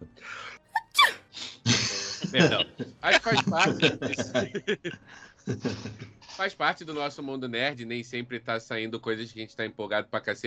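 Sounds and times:
person sneezing: 0:00.8 - 0:01.2
laughter: 0:01.6 - 0:06.6
speech: 0:02.3 - 0:10.4.

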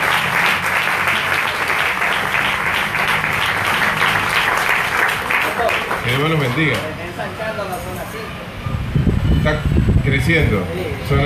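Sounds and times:
crowd applauding at a prayer gathering: 0:00.0 - 0:06.9
speech: 0:06.2 - 0:07.7, 0:09.4 - 0:11.2.

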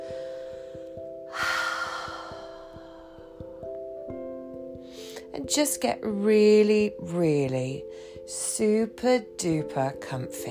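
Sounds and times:
soft steady music with a gentle pulsing beat: 0:00.0 - 0:10.4
deep breath exhaled through an open mouth: 0:00.1 - 0:03.5
speech: 0:05.4 - 0:10.4.

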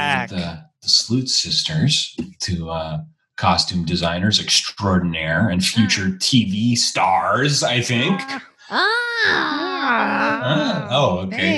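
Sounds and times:
voices wailing and yowling like howling cats: 0:00.0 - 0:02.1, 0:02.7 - 0:11.5
laughter: 0:00.0 - 0:11.5
speech: 0:00.2 - 0:11.5.

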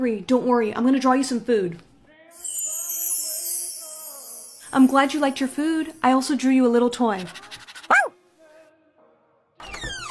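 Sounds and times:
speech: 0:00.0 - 0:01.9, 0:04.7 - 0:08.0
puppy yapping: 0:07.8 - 0:08.2.

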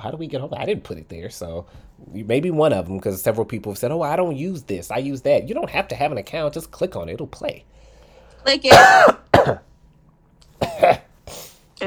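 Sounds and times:
speech: 0:00.0 - 0:07.8, 0:08.4 - 0:09.7, 0:10.8 - 0:11.0
person in a hard coughing fit: 0:08.7 - 0:09.7, 0:10.6 - 0:11.5.

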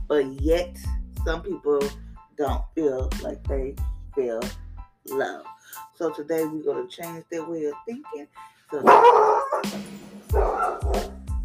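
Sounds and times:
speech: 0:00.1 - 0:11.1
dog barking with whiny yipping tones: 0:08.8 - 0:11.2.

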